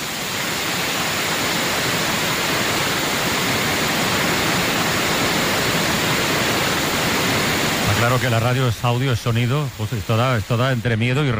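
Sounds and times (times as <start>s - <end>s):
waterfall swollen by heavy rains roaring: 0.0s - 11.3s
speech: 8.1s - 11.3s.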